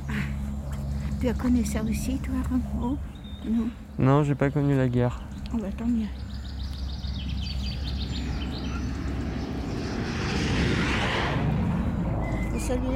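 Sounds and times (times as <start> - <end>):
airplane passing overhead: 0.0 - 12.9
speech: 1.2 - 6.2, 12.7 - 12.9
faint bird chirps: 2.9 - 9.9, 12.2 - 12.8.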